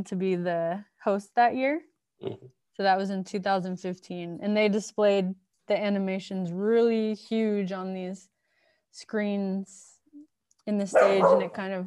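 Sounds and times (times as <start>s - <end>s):
speech: 0.0s - 8.3s, 8.9s - 9.9s, 10.7s - 11.8s
mixed-breed dog barking: 10.9s - 11.6s.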